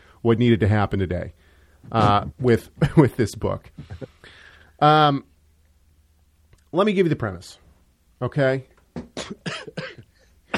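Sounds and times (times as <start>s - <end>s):
speech: 0.2s - 5.3s, 6.7s - 7.6s, 8.2s - 10.0s
harsh breathy coughs: 9.2s - 10.5s.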